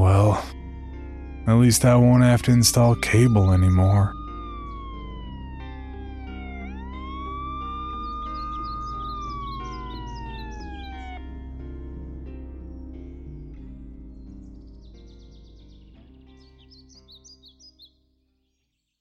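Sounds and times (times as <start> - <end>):
distant police siren wailing: 0.0 - 11.8
speech: 1.5 - 4.2.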